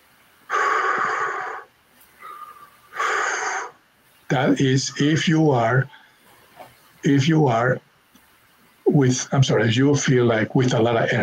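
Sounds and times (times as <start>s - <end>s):
person breathing in a breathing exercise with short inhales and longer exhales: 0.5s - 3.8s
speech: 4.3s - 6.0s, 7.0s - 7.9s, 9.0s - 11.2s.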